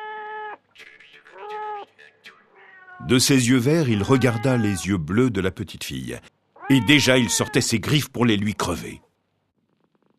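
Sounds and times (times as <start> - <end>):
thin black cat meowing: 0.0 - 0.6, 1.3 - 1.9, 2.5 - 5.0, 6.6 - 7.9
speech: 3.0 - 9.1.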